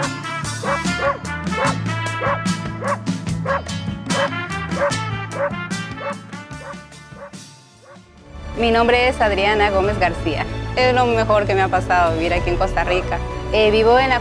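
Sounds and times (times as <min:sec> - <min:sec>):
small dog barking and yipping: 0:00.6 - 0:03.6, 0:04.2 - 0:06.8
speech: 0:08.6 - 0:14.1.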